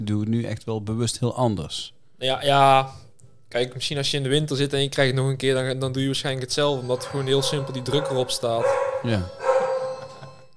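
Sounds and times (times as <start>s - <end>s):
speech: 0.0s - 9.5s
doorbell ringing: 6.6s - 10.5s
dog barking at the doorbell: 6.9s - 10.1s.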